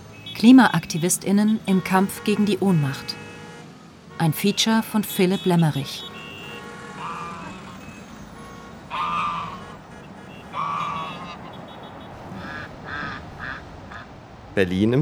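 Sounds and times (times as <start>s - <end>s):
city ambience: 0.0s - 15.0s
speech: 0.4s - 3.2s, 4.2s - 6.1s, 14.6s - 15.0s
ducks quacking on a river: 5.2s - 14.2s.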